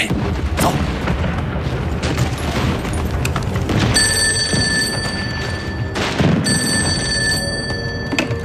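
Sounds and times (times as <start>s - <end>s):
booms: 0.0s - 6.6s
constant rumbling noise: 0.0s - 8.4s
telephone ringing: 4.0s - 8.4s.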